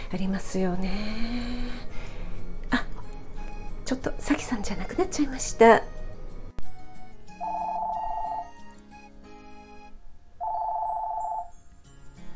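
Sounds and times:
faint music: 0.0 - 12.3
speech: 0.1 - 1.9, 3.9 - 6.0
telephone ringing in electronic trilling bursts: 7.4 - 8.7, 9.5 - 11.6.

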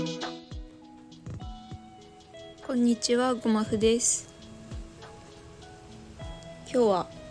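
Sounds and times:
soft steady rain falling outside an open window: 0.7 - 7.3
speech: 2.9 - 4.3, 6.8 - 7.2.

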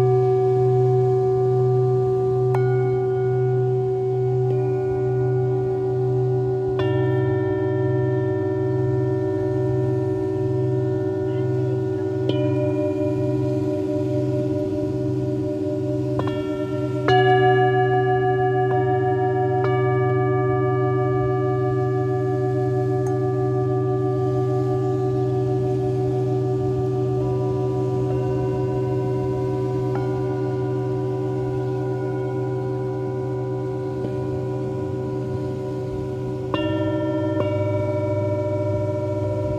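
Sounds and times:
singing bowls ringing in long overlapping tones on a beach at night: 0.0 - 39.5.

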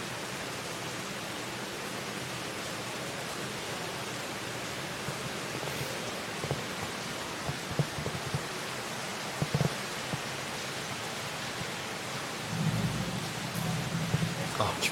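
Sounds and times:
steady heavy rain: 0.0 - 14.9
thunder rumbling during a rainstorm: 12.4 - 14.9.

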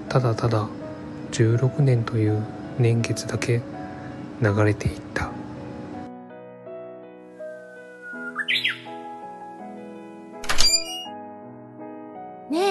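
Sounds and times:
soft sustained music: 0.0 - 12.6
speech: 0.1 - 3.8, 4.4 - 5.2
Japanese bush warbler singing: 7.8 - 9.2.

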